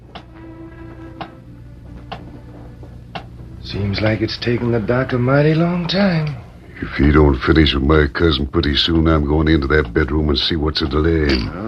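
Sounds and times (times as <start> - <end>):
low constant hum: 0.0 - 11.6
big clock ticking slowly: 3.1 - 3.3, 7.7 - 11.5
speech: 3.6 - 11.6.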